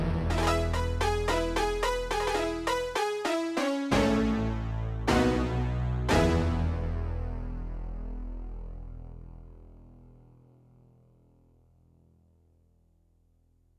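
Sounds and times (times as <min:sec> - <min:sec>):
spacey synth keys with decay from a Yamaha TX16W: 0:00.2 - 0:09.3.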